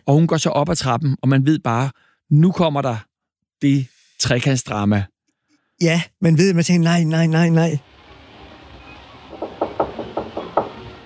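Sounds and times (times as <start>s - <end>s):
speech: 0.0s - 5.1s, 5.8s - 7.9s
faint hum: 7.7s - 11.0s
woman knocking on a wooden door: 9.3s - 11.0s.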